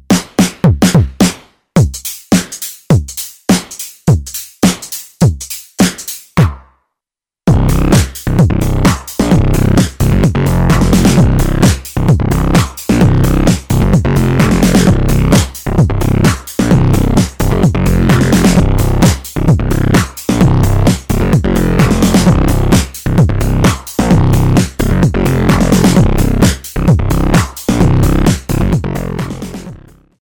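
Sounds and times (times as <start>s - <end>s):
V-Synth synthesizer percussion: 0.1s - 6.6s, 7.5s - 30.2s.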